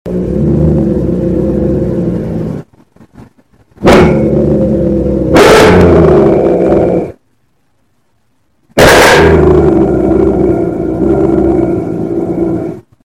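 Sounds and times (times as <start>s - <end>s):
Doberman growling: 0.1s - 2.6s, 3.8s - 7.2s, 8.8s - 12.9s.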